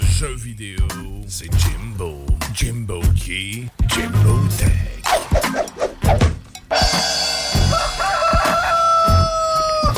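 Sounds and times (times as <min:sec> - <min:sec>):
speech: 0:00.2 - 0:05.8
rooster crowing: 0:07.4 - 0:09.9.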